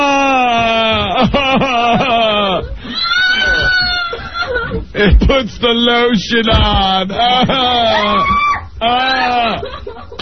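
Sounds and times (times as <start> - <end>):
laughter: 0.6 - 5.5, 7.1 - 10.2
woman screaming in horror: 2.8 - 4.7, 7.7 - 9.7
speech: 5.0 - 9.7.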